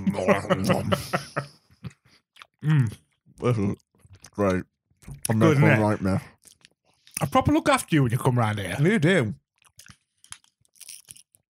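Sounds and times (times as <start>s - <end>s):
laughter: 0.0s - 1.7s
speech: 0.1s - 1.3s, 2.6s - 3.8s, 4.4s - 6.4s, 7.2s - 9.4s
person biting and chewing a flaky pastry: 9.5s - 11.4s.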